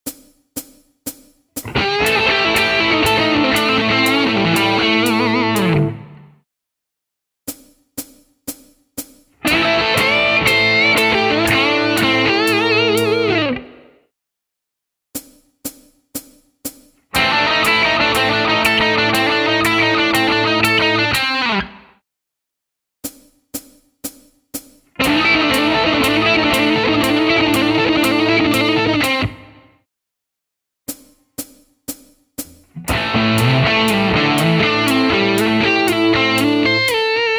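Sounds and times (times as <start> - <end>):
rock guitar licks: 1.6 - 6.3, 9.4 - 13.9, 17.1 - 21.8, 25.0 - 29.6, 32.4 - 37.3.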